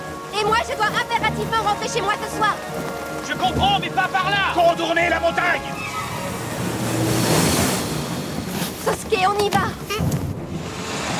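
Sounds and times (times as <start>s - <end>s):
speech: 0.6s - 6.0s, 8.9s - 10.2s
big ocean wave crashing: 5.6s - 8.6s.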